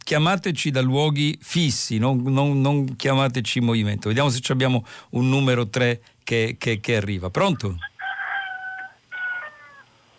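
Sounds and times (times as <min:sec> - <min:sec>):
speech: 0:00.1 - 0:07.9
rooster crowing: 0:07.8 - 0:10.0.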